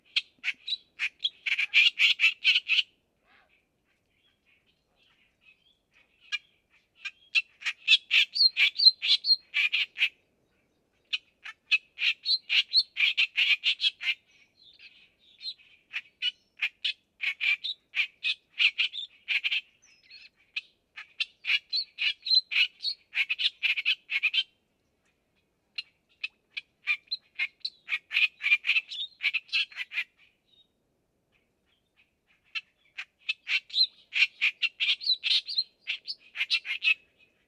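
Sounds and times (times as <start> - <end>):
clamorous reed warbler: 0.0 - 30.7, 31.3 - 37.4.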